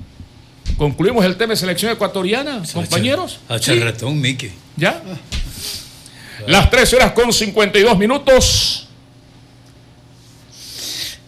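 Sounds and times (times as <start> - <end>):
speech: 0.8 - 5.8, 6.4 - 8.8
single long deep breath: 5.4 - 6.5, 10.5 - 11.2.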